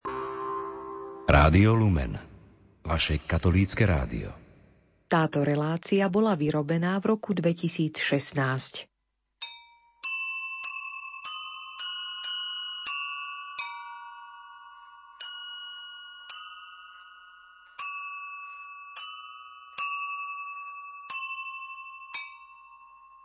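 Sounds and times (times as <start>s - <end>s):
speech: 1.3s - 4.4s, 5.1s - 8.9s
small bell ringing: 9.4s - 23.2s.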